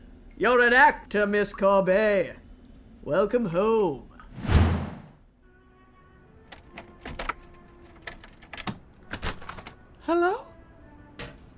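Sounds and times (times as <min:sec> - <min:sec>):
speech: 0:00.4 - 0:02.4, 0:03.0 - 0:04.5
low thud: 0:04.4 - 0:05.2
keys jangling while a door is locked: 0:06.5 - 0:09.7.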